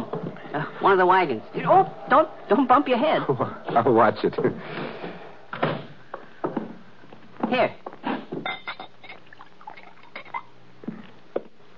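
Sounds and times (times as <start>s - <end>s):
speech: 0.5s - 5.1s, 7.5s - 7.9s
light clinks and taps of glassware: 8.4s - 10.3s
drink pouring into a glass inside a wagon used as a home: 8.8s - 10.4s.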